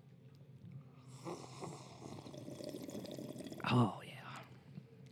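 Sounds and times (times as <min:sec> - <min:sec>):
several people sipping hot medium and Vienna roast coffee from cups: 0:01.0 - 0:03.7
speech: 0:03.7 - 0:04.0.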